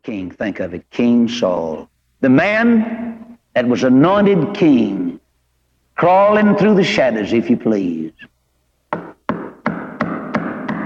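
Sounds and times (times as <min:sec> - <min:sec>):
speech: 0:00.1 - 0:05.2, 0:06.0 - 0:08.3
firm knocks on a door: 0:08.9 - 0:10.8.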